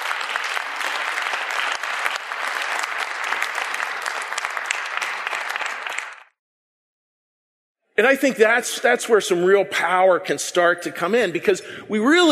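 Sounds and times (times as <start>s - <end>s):
audience applause from a sizable crowd: 0.0s - 6.4s
speech: 8.0s - 12.3s.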